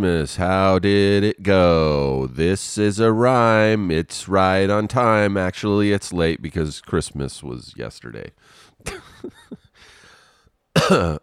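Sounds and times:
speech: 0:00.0 - 0:09.4, 0:10.8 - 0:11.2
person coughing: 0:08.9 - 0:09.6, 0:10.8 - 0:11.2
raspy exhale: 0:09.8 - 0:10.5
throat clearing: 0:10.8 - 0:11.2.

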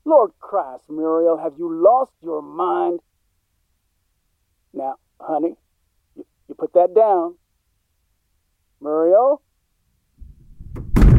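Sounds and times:
speech: 0:00.1 - 0:03.1, 0:04.7 - 0:05.6, 0:06.2 - 0:07.4, 0:08.8 - 0:09.4
heavy door slamming shut: 0:10.2 - 0:11.1
low rumbling shuffle: 0:10.2 - 0:11.1.

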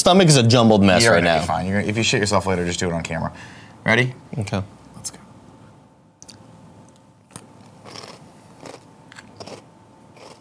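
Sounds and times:
speech: 0:00.0 - 0:05.2
crunchy chewing of snack mix: 0:07.3 - 0:10.3.

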